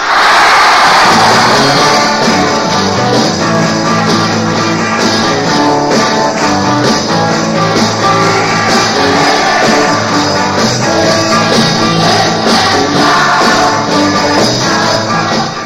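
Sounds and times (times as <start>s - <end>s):
crowd of fans screaming at a concert in an auction hall: 0.0s - 3.4s, 7.4s - 15.6s
music playing at a concert: 0.7s - 15.6s.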